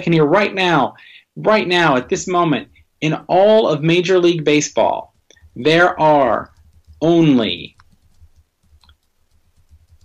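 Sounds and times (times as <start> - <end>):
speech: 0.0 - 7.8
computer keyboard clicking: 5.0 - 10.0.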